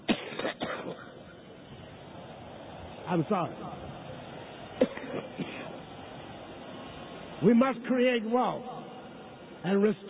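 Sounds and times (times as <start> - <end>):
harsh coughs: 0.0 - 1.2, 4.8 - 5.8
speech: 3.1 - 3.8, 7.4 - 8.7, 9.6 - 10.0.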